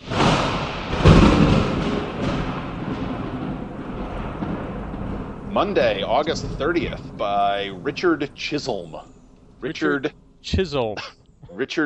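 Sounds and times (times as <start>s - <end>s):
thunder sound effect rumble and boom: 0.0s - 11.8s
laughter: 5.5s - 9.0s, 9.6s - 11.8s
speech: 5.6s - 11.8s.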